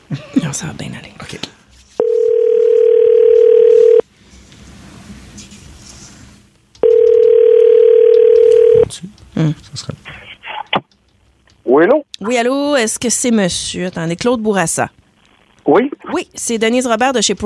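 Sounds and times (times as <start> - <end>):
speech: 0.1 - 1.6, 11.8 - 15.0, 15.7 - 17.4
telephone line tone while a call is being placed: 2.0 - 4.0, 6.8 - 8.8.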